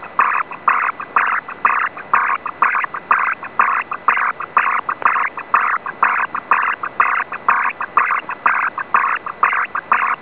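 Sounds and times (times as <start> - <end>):
Rohde & Schwarz 8-tone ARQ data signal in ISS-mode sending traffic: 0.0 - 10.2.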